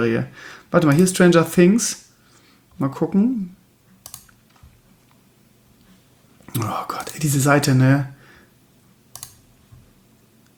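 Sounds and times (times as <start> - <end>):
speech: 0.0 - 2.0, 2.8 - 3.6, 6.6 - 8.2
computer mouse double-clicking: 4.0 - 4.7, 7.0 - 7.3, 9.1 - 9.5.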